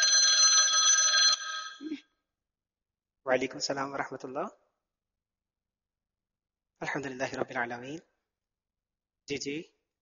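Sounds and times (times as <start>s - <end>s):
phone ringing with an incoming call: 0.0s - 2.0s
speech: 3.3s - 4.6s, 6.8s - 8.1s, 9.3s - 9.8s.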